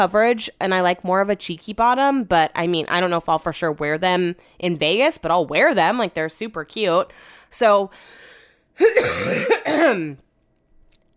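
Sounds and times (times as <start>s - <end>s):
speech: 0.0s - 10.2s
person coughing: 8.8s - 10.2s
throat clearing: 8.8s - 10.2s.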